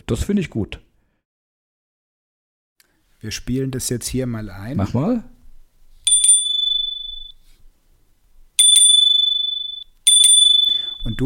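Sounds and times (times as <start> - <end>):
speech: 0.1 - 0.9, 3.2 - 5.3, 11.0 - 11.2
bike computer bell ringing: 6.1 - 7.4, 8.6 - 11.2.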